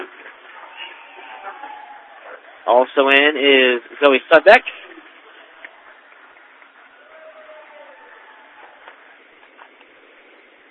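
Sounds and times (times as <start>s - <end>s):
dense crowd noise in a basketball arena: 0.0s - 10.6s
basketball crowd shouting: 0.5s - 2.8s, 6.8s - 9.3s
speech: 2.7s - 4.8s.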